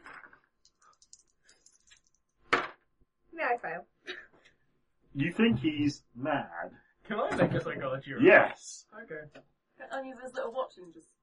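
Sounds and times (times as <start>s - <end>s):
dice clattering on a table: 0.0s - 2.8s
speech: 3.5s - 3.9s, 5.2s - 11.2s.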